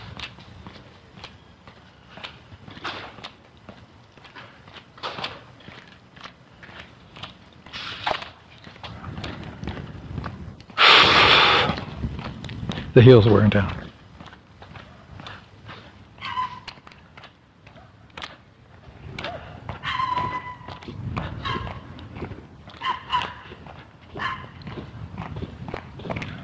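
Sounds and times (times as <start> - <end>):
small dog's quick light steps pattering: 0.0 - 10.8, 11.8 - 26.4
speech: 13.0 - 13.8
small dog yipping or whining: 16.2 - 16.8, 19.3 - 20.8, 21.4 - 21.8, 22.8 - 23.5, 24.2 - 24.6.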